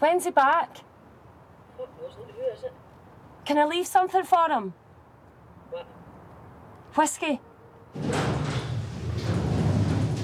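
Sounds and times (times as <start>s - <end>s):
speech: 0.0s - 0.9s, 1.8s - 4.8s, 5.7s - 6.0s, 6.9s - 8.3s
lift door sliding open: 7.9s - 10.2s.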